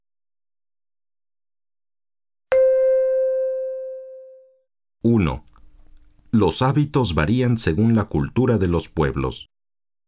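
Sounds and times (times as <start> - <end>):
bell chime signal in a listening exercise: 2.5 - 4.3
speech: 5.0 - 5.5, 6.3 - 9.5.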